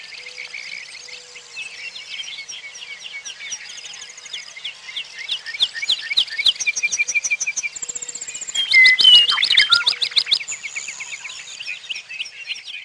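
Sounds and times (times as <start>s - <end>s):
bird chirps and trills: 0.0s - 12.8s
whistled bird note: 8.5s - 10.4s.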